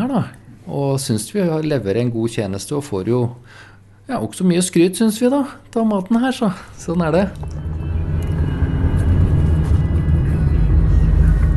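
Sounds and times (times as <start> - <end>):
speech: 0.1 - 7.8
car driving to Lensbygda heard from inside the cabin: 7.2 - 11.5.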